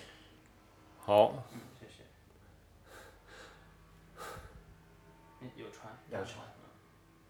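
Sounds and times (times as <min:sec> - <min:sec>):
speech: 0:01.1 - 0:01.7, 0:05.5 - 0:06.6
person panting with sharp breathy exhalations: 0:02.9 - 0:03.6, 0:04.2 - 0:04.7.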